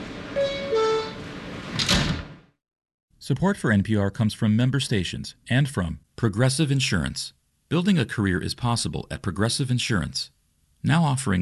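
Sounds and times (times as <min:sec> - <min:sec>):
faint hum of subway train car: 0:00.0 - 0:01.8
sliding subway train doors closing with whoosh and thump: 0:00.0 - 0:02.4
two-note descending chime: 0:00.4 - 0:01.2
speech: 0:03.2 - 0:11.4.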